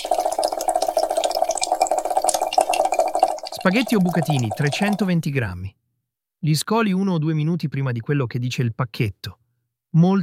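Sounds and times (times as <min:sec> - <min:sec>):
water running into a cooking pot for boiling pasta: 0:00.0 - 0:05.2
speech: 0:03.6 - 0:05.8, 0:06.4 - 0:10.2.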